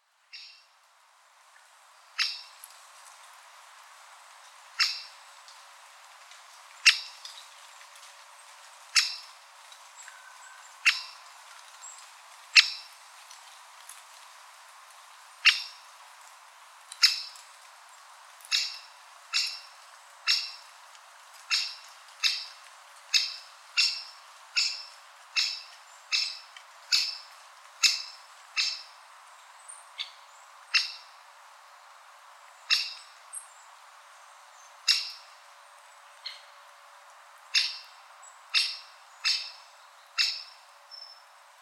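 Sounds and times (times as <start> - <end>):
great spotted woodpecker Dendrocopos major calling: 0.3 - 0.6, 2.2 - 2.5, 4.8 - 5.1, 6.8 - 7.2, 9.0 - 9.3, 10.1 - 11.2, 12.6 - 12.9, 15.4 - 15.8, 17.0 - 17.4, 18.5 - 20.7, 21.5 - 28.9, 30.0 - 31.1, 32.7 - 33.1, 34.8 - 35.3, 37.5 - 37.9, 38.5 - 39.6, 40.2 - 40.6.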